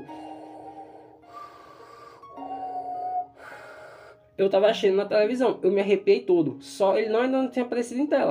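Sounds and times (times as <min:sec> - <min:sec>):
voice imitating heavy mechanical respirator breathing: 0:00.0 - 0:04.3
speech: 0:04.4 - 0:08.2.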